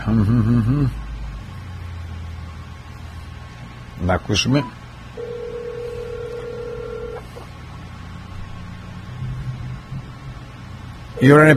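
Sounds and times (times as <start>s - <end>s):
speech: 0.1s - 1.1s, 4.0s - 4.8s, 11.2s - 11.5s
telephone ringback tone: 5.2s - 7.3s, 11.2s - 11.5s.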